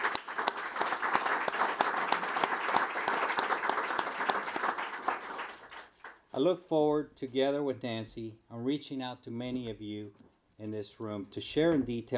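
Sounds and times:
room full of people applauding: 0.0s - 6.2s
speech: 6.4s - 12.1s.

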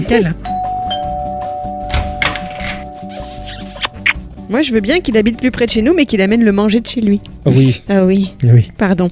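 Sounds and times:
speech: 0.1s - 0.5s, 4.5s - 9.1s
doorbell ringing with a sustained electronic tone: 0.4s - 3.4s.

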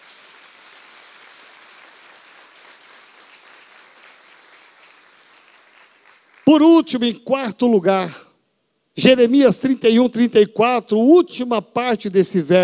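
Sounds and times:
large audience clapping: 0.0s - 6.9s
speech: 6.5s - 8.2s, 9.0s - 12.6s.

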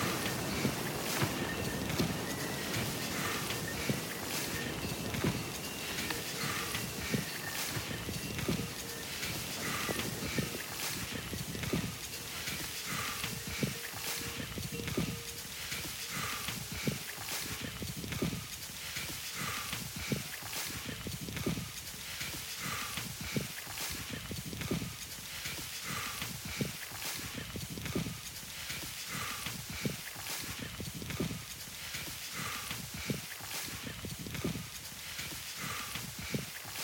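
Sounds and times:
faint voices: 0.0s - 17.6s
continuous open-air hiss: 0.0s - 36.8s
sharp clopping hoofbeats on a high mountain hiking trail: 0.0s - 36.8s.

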